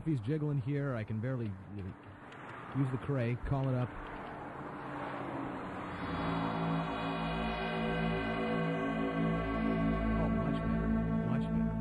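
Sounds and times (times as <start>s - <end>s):
speech: 0.0s - 4.1s
layered droning harmonic tones: 3.6s - 11.7s
dense electronic hum of diner inertial dampening fields switched on: 4.4s - 11.7s
faint wavering shimmer: 4.8s - 11.7s.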